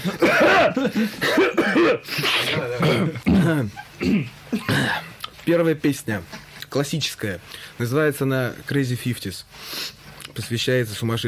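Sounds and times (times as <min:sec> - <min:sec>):
person clearing throat with raspy coughing grunts: 0:00.0 - 0:05.2
speech: 0:00.0 - 0:11.2.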